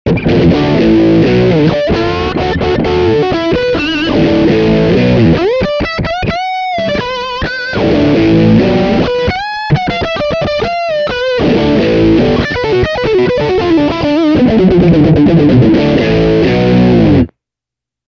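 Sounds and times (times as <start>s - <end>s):
electric guitar: 0.1s - 17.3s.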